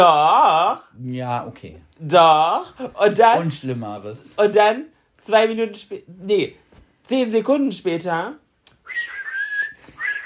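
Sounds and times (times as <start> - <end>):
speech: 0.0 - 9.2
person whistling a harmony line to a song: 8.8 - 10.2.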